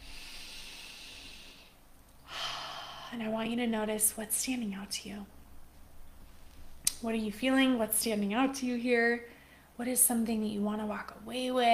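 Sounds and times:
speaker's deep breath: 0.0s - 3.2s
speech: 3.1s - 5.4s, 7.0s - 11.7s.

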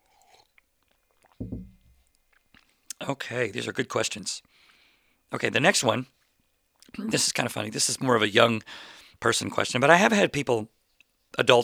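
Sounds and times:
sipping coffee: 1.1s - 2.0s
speech: 3.1s - 4.5s, 5.3s - 6.2s, 6.9s - 11.6s.

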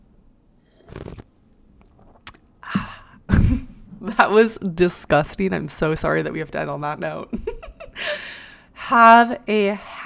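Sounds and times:
slurping coffee from a mug: 0.6s - 2.4s
swallow: 0.7s - 3.9s
speech: 4.2s - 7.5s, 8.9s - 10.0s.

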